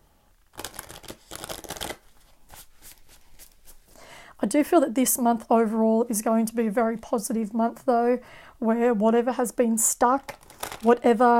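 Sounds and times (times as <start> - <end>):
deck of cards shuffled on a lap: 0.5 - 3.9, 10.3 - 10.9
speech: 4.4 - 11.3.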